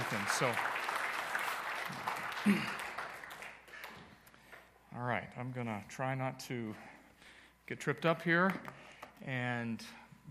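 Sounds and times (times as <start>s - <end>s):
church congregation applauding: 0.0s - 4.2s
speech: 0.3s - 0.7s, 1.9s - 2.8s, 5.0s - 6.9s, 7.7s - 10.3s.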